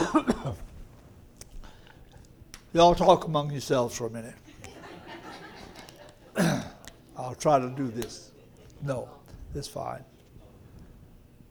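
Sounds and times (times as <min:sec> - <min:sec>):
person clearing throat: 0:00.0 - 0:00.7, 0:06.3 - 0:06.9
speech: 0:00.1 - 0:00.3, 0:02.8 - 0:04.4, 0:06.4 - 0:06.6, 0:07.3 - 0:10.1
laughter: 0:04.4 - 0:07.0, 0:07.6 - 0:09.4.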